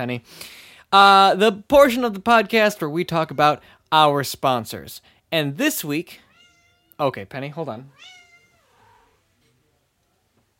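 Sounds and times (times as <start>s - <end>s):
speech: 0.0s - 6.2s, 7.0s - 8.2s
low noise: 0.0s - 10.5s
pet cat meowing: 6.2s - 7.0s, 7.9s - 9.2s.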